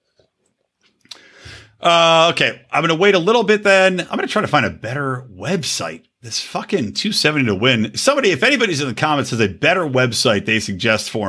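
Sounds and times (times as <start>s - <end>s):
person sipping water: 0.8s - 1.5s
speech: 1.8s - 11.2s.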